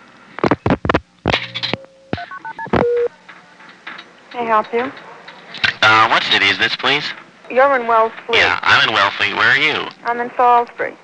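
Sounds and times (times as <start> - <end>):
touch-tone telephone dialing tones as zero is dialed: 1.8 - 3.1
speech: 4.4 - 5.0, 5.9 - 11.0.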